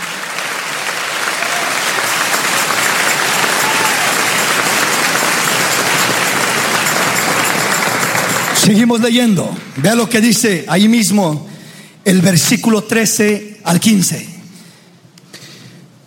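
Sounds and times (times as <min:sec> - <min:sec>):
audience applauding: 0:00.0 - 0:09.7
speech: 0:08.7 - 0:14.4.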